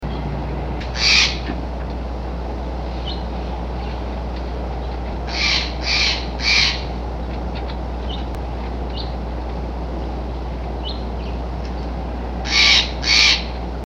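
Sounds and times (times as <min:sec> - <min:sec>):
low steady rumble: 0:00.0 - 0:13.8
Steller's jay giving harsh raspy kwesh calls: 0:00.9 - 0:01.5, 0:05.2 - 0:06.9, 0:12.4 - 0:13.6.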